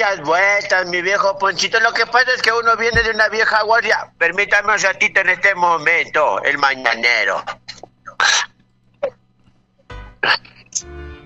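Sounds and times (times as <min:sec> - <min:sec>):
speech: 0:00.0 - 0:08.4, 0:10.2 - 0:11.0
gulping while drinking cough syrup: 0:10.2 - 0:10.8.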